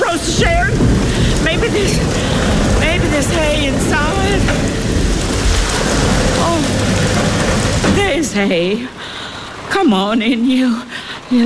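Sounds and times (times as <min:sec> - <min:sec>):
low rumble of thunder: 0:00.0 - 0:09.8
heavy rain: 0:00.0 - 0:11.4
speech: 0:00.1 - 0:00.8, 0:08.4 - 0:09.1, 0:09.7 - 0:11.4.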